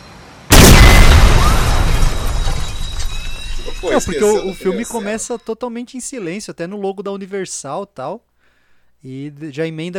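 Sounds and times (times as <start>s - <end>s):
explosion in a film soundtrack on a home theater system: 0.5s - 3.2s
crackling debris of a film soundtrack explosion: 0.5s - 3.8s
speech: 3.8s - 8.3s, 9.0s - 9.9s.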